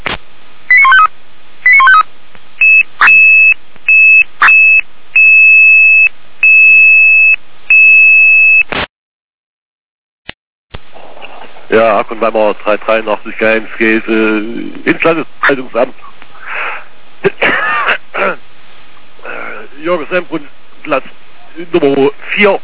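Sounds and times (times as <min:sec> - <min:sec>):
loud electronic alarm tone over a narrow radio-like channel: 0:00.7 - 0:02.0, 0:02.6 - 0:08.7
speech: 0:11.7 - 0:16.1, 0:19.9 - 0:22.6.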